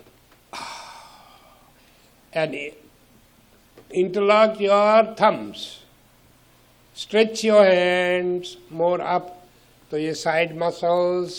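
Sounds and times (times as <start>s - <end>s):
person inhaling deeply during a stretching exercise: 0.5s - 2.2s
speech: 2.3s - 2.9s, 3.9s - 5.8s, 7.0s - 11.3s.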